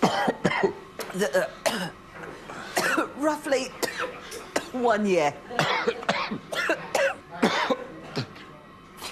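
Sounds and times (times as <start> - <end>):
harsh hacking coughs from chilli fumes: 0.0 - 2.0, 2.7 - 3.2, 3.8 - 4.8, 5.6 - 8.4
speech: 1.2 - 1.9, 3.2 - 6.0.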